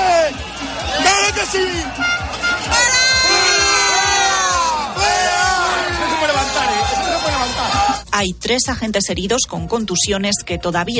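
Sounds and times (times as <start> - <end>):
crowd of protesting farmers shouting and chanting: 0.0 - 8.1
speech: 8.2 - 10.9.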